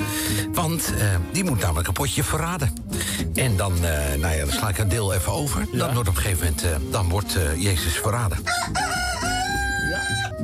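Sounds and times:
speech: 0.6s - 9.0s
rooster crowing: 8.5s - 10.4s.

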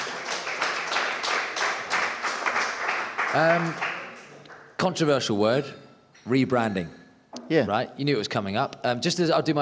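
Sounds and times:
audience round of applause: 0.0s - 4.8s
speech: 3.3s - 3.9s, 4.8s - 9.5s.

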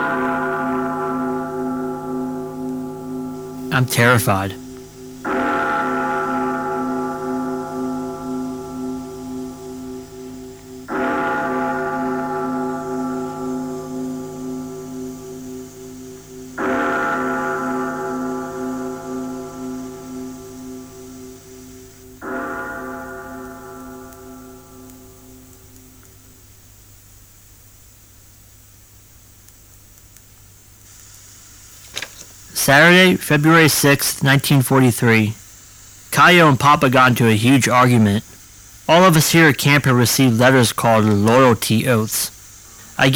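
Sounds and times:
mess hall bells tolling at a camp: 0.0s - 15.2s, 16.6s - 20.3s, 22.2s - 24.8s
speech: 3.7s - 4.6s, 32.7s - 35.4s, 36.2s - 42.4s, 43.0s - 43.1s.

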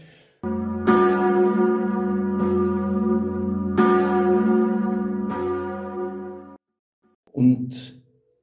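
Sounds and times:
swinging church bell ringing: 0.4s - 6.6s.

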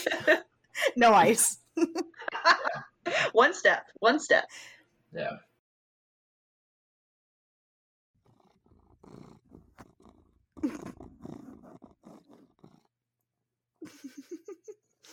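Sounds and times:
laughter: 0.0s - 1.0s, 1.8s - 3.4s, 13.8s - 15.1s
speech: 0.0s - 5.5s
cat purring: 8.2s - 13.0s.

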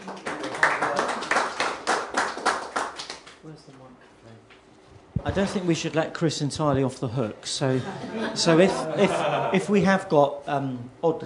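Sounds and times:
round of applause from a small audience: 0.0s - 3.4s
speech: 5.2s - 11.2s
laughter: 7.7s - 9.8s.

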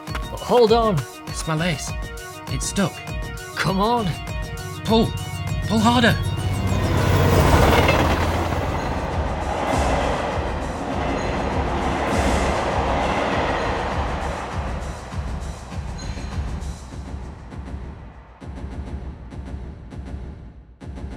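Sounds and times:
speech: 0.3s - 4.3s, 4.9s - 6.3s
train rushing past with wheels and rattling cars: 4.0s - 14.6s.

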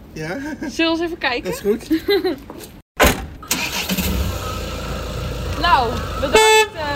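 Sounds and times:
speech: 0.2s - 2.8s, 5.6s - 6.9s
car engine cranking and idling: 3.2s - 6.9s.

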